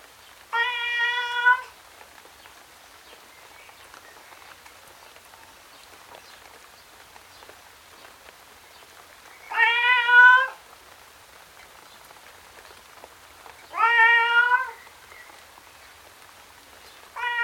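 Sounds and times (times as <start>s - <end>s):
steady patter of rain: 0.0s - 17.4s
male tom cat meowing outdoors in the rain: 0.5s - 1.7s, 9.5s - 10.6s, 13.7s - 14.8s, 17.2s - 17.4s.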